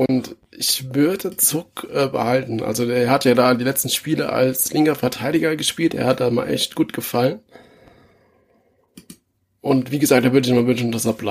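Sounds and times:
speech: 0.0 - 7.6, 9.6 - 11.2
faint broadband noise: 0.0 - 8.0, 8.9 - 11.2
computer mouse clicks: 8.9 - 9.2.

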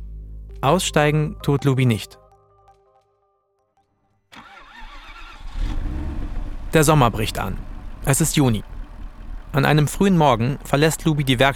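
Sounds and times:
speech: 0.6 - 2.2, 6.8 - 8.7, 9.5 - 11.5
snow-white Range Rover Vogue engine starting and running: 4.3 - 11.5.

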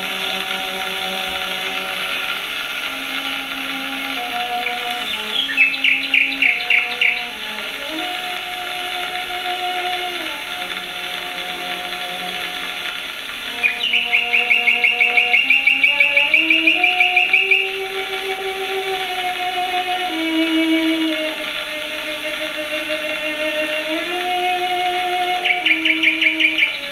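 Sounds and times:
hiss of an old 1927 recording: 0.0 - 26.9
slow cello melody on a 1927 recording: 0.0 - 26.9
nightingale trilling: 4.4 - 7.4, 13.5 - 17.9, 25.2 - 26.9.

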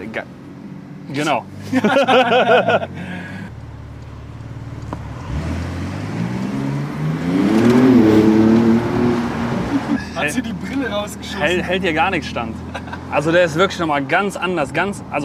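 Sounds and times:
rushing road and wind noise: 0.0 - 15.2
speech: 0.2 - 0.4, 1.1 - 3.3, 10.2 - 15.2
laughter: 1.6 - 3.4, 9.6 - 11.8, 12.5 - 13.2
Turbo S sports car engine accelerating: 2.8 - 13.4.

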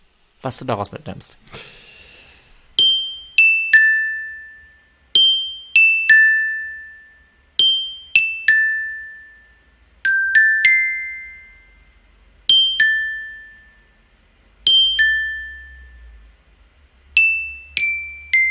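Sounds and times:
speech: 0.4 - 1.8
glockenspiel melody: 2.8 - 16.3, 17.2 - 18.4.

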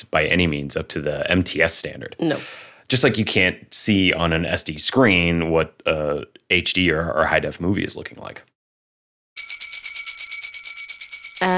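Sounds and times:
speech: 0.1 - 8.5
jingle bells shaking: 9.4 - 11.5.

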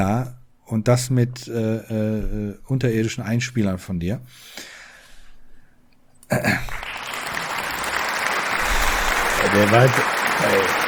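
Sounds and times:
speech: 0.0 - 4.8, 6.3 - 6.9, 9.5 - 10.8
slow applause: 6.6 - 10.8.

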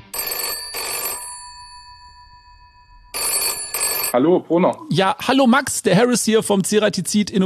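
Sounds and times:
telephone ringing for an outgoing call: 0.1 - 4.2
speech: 4.1 - 7.4.

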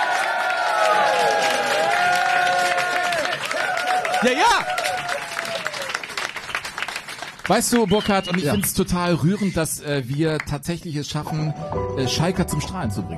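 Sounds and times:
live audience cheering and whooping: 0.0 - 6.3
live audience clapping: 0.0 - 11.2
speech: 4.2 - 4.8, 7.5 - 13.1
high whistles: 7.7 - 8.8.

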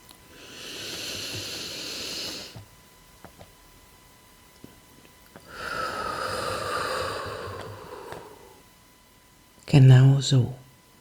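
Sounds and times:
long exhale through the mouth during a guided breathing exercise: 0.3 - 2.6, 5.4 - 8.6
speech: 9.8 - 10.6.

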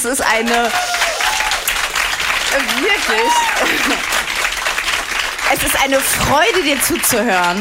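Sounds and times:
speech: 0.0 - 1.0, 2.5 - 4.2, 5.5 - 7.6
dense crackle of clapping hands: 0.0 - 7.6
faint voices cheering: 0.4 - 1.7, 2.6 - 4.0
laughter: 2.6 - 4.2.

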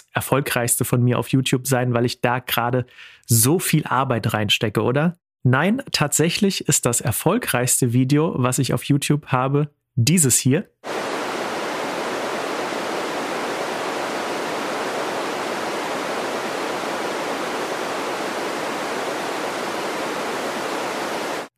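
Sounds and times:
speech: 0.2 - 11.0
steady broadband white noise hiss: 10.8 - 21.5.

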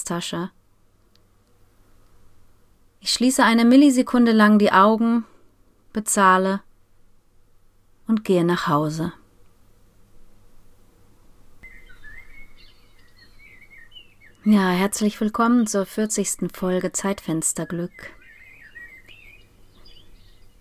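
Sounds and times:
speech: 0.1 - 0.6, 3.0 - 5.3, 6.0 - 6.7, 8.1 - 9.2, 14.4 - 18.2
soft birdsong from a motion-activated bird box: 11.6 - 20.5.

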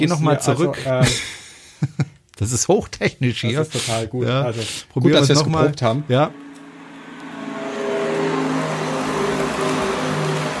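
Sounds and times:
speech: 0.0 - 6.4
synthetic pedestrian warning sound of a Renault Zoe electric car: 5.4 - 10.5.

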